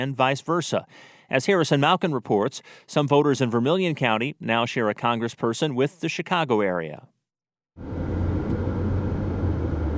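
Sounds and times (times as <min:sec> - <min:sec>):
speech: 0:00.0 - 0:07.2, 0:07.8 - 0:08.2
car driving along Illinois Route 1 south of Danville on a sunny afternoon: 0:07.8 - 0:09.9.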